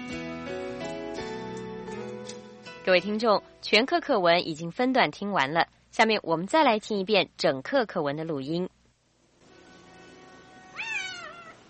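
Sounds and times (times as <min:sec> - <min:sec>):
speech: 0:02.8 - 0:08.8
cat meowing: 0:09.8 - 0:11.6.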